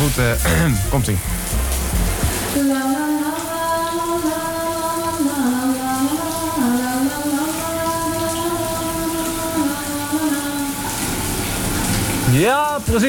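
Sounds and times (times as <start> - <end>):
sustained melodic tone: 0.0 - 2.6
shower tap spraying water: 0.0 - 13.0
speech: 0.1 - 1.7, 2.6 - 3.0, 12.4 - 13.0.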